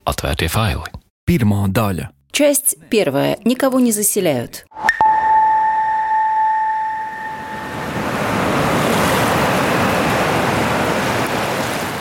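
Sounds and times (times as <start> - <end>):
speech: 0.1 - 4.7
thin high tone: 4.8 - 8.2
sea waves washing onto a beach in the dune zone at Asari: 7.3 - 11.9.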